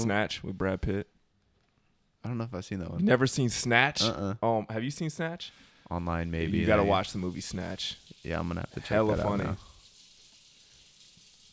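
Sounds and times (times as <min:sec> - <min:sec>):
speech: 0:00.0 - 0:01.2, 0:02.2 - 0:09.7
tap water running while washing dishes: 0:06.3 - 0:11.5.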